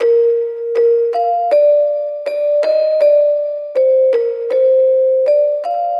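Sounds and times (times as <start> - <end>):
nostalgic plucked melody loop in A sharp major: 0.0 - 5.9.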